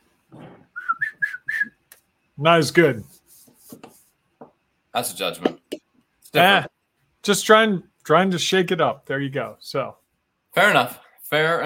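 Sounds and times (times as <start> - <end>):
person whistling a short tune: 0.7 - 1.8
speech: 2.4 - 3.2, 5.0 - 5.6, 6.3 - 10.0, 10.6 - 11.6.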